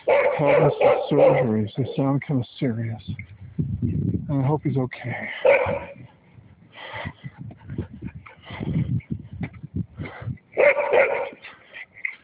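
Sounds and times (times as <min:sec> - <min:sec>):
dogs barking: 0:00.0 - 0:02.2, 0:05.3 - 0:06.1, 0:10.6 - 0:12.2
speech: 0:00.4 - 0:06.1.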